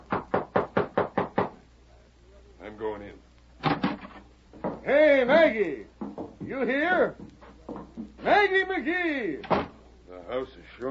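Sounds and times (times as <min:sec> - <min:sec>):
knocking on a house door: 0:00.1 - 0:01.6, 0:04.6 - 0:04.9, 0:06.0 - 0:06.6
speech: 0:04.9 - 0:05.9, 0:06.5 - 0:07.2, 0:08.2 - 0:09.7, 0:10.3 - 0:10.8.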